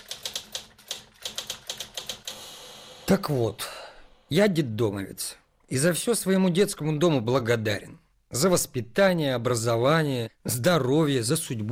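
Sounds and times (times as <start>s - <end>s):
typewriter keys clacking as a letter is typed at a workplace: 0.0s - 2.3s
speech: 3.1s - 3.6s, 4.3s - 11.6s.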